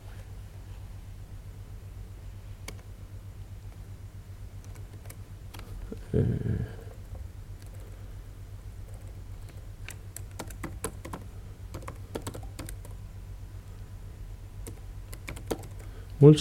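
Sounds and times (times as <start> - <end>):
steady low electrical hum: 0.0 - 16.3
typing a username on a computer keyboard: 4.6 - 5.6, 7.6 - 8.0, 8.9 - 13.0, 14.6 - 15.9.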